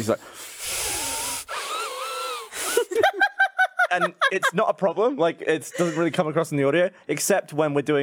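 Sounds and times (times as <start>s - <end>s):
speech: 0.0s - 0.8s, 3.9s - 8.0s
person imitating heavy breathing through the nose: 0.2s - 2.9s
laughter: 2.5s - 4.7s.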